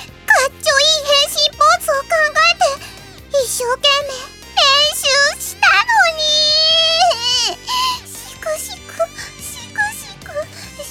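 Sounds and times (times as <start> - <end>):
person in an audio drama mock sobbing and whimpering: 1.6 - 10.8.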